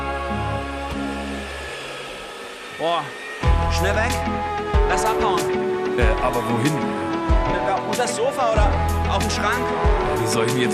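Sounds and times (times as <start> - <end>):
vacuum cleaner running: 0.0 - 10.7
speech: 2.8 - 10.7.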